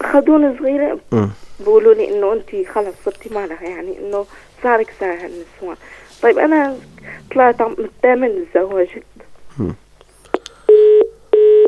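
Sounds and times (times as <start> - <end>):
speech: 0.1 - 9.8
brief burst of voice on a telephone line: 1.1 - 1.8, 2.5 - 9.9
telephone tone beeps on a line after a call is cut off: 10.7 - 11.6.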